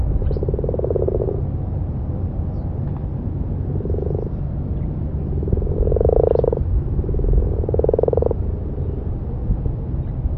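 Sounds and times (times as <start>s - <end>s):
steady low rumble: 0.0s - 10.3s
common frog giving soft purring croaks: 0.1s - 1.5s, 3.6s - 4.4s, 5.3s - 8.8s.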